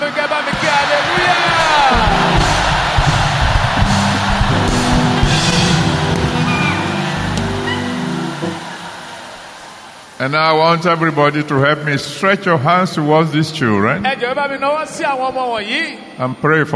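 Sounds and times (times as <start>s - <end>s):
large auditorium audience shouting hallelujah: 0.0s - 10.2s
speech: 10.2s - 16.7s.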